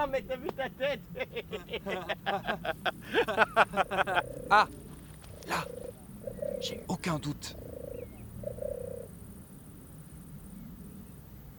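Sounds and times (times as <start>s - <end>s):
laughter: 0.0s - 4.7s
speech: 0.0s - 4.9s, 5.5s - 5.8s, 6.6s - 7.6s
steady low outdoor rumble: 0.0s - 11.5s
European turtle dove purring coo: 2.7s - 6.9s, 7.5s - 11.5s.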